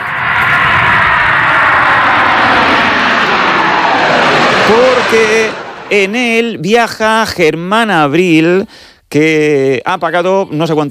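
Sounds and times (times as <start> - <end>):
commercial airliner engines roaring in flight: 0.0 - 7.0
speech: 4.7 - 10.8.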